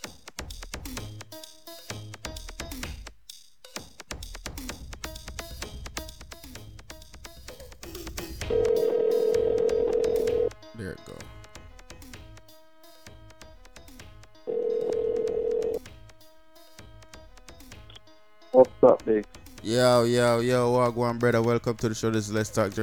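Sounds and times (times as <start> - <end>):
music: 0.0 - 22.8
phone ringback tones: 8.4 - 10.6, 14.5 - 15.8
speech: 18.8 - 22.8.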